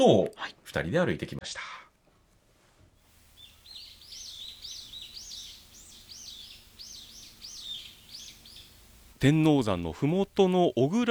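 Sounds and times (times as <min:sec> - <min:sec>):
speech: 0:00.0 - 0:01.8, 0:09.2 - 0:11.0
soft low hush: 0:01.6 - 0:11.0
birds singing above quiet shrine grounds at the foot of a mountain: 0:03.1 - 0:11.0.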